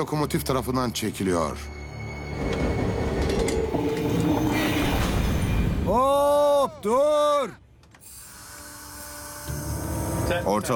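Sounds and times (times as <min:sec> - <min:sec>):
speech: 0:00.0 - 0:02.7, 0:05.9 - 0:07.6, 0:10.3 - 0:10.7
rail transfer car grinding and rumbling as it derails onto ice: 0:01.6 - 0:05.9.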